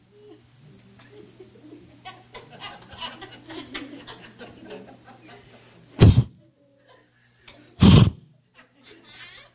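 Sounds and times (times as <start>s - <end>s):
steady low hum: 0.0s - 6.5s, 7.2s - 8.4s
soft murmuring and chatter: 0.0s - 9.5s
laughter: 1.0s - 5.9s, 6.8s - 9.5s
human voice mimicking a horse's affectionate snort or nicker: 6.0s - 6.4s, 7.8s - 8.2s.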